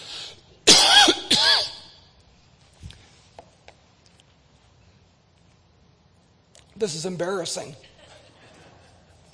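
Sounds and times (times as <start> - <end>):
person coughing during a talk: 0.7 - 2.0
speech: 6.8 - 7.9
laughter: 7.8 - 9.3.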